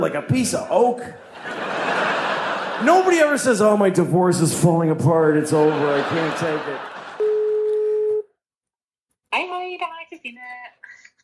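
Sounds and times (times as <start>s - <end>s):
speech: 0.0s - 1.7s, 2.8s - 6.9s
laughter: 1.2s - 3.6s, 5.2s - 7.2s
telephone ringing tone: 7.2s - 8.3s.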